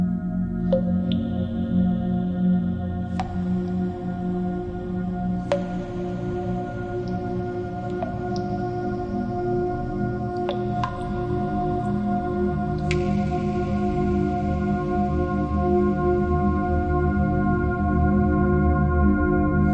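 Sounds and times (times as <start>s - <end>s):
ringing ambient drone of sustained low and middle tones: 0.2s - 19.7s
water drops falling into a cave with shimmering echo: 3.1s - 4.4s, 5.4s - 9.3s, 10.1s - 14.4s.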